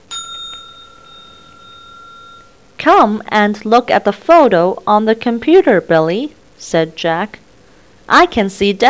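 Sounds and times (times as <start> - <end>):
bright metallic bell chime signaling page turn: 0.0 - 2.6
speech: 2.8 - 7.4, 8.1 - 8.8.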